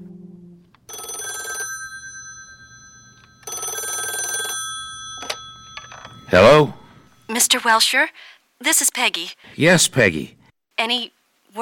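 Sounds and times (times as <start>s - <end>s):
telephone bell ringing: 0.9s - 7.3s
speech: 6.3s - 6.8s, 7.4s - 11.5s.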